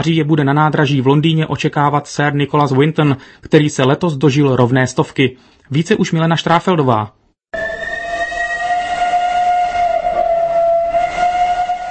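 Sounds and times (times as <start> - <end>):
speech: 0.0 - 7.2
train high-pitched whistling tone at a main railway station platform: 7.6 - 11.8.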